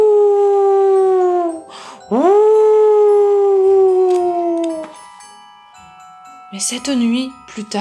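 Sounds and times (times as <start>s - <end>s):
human voice imitating a wolf howling: 0.0s - 4.9s
speech: 6.6s - 7.7s.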